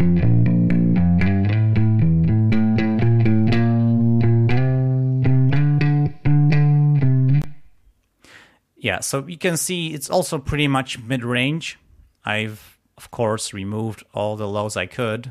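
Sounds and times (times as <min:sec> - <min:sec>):
electric bass recorded direct from line playing plucked notes with reverb: 0:00.0 - 0:07.7
speech: 0:08.9 - 0:15.2.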